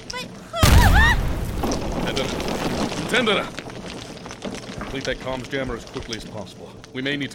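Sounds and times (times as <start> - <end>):
deep explosion with lingering low rumble: 0.6 - 3.7
speech: 3.1 - 3.6, 4.9 - 7.3.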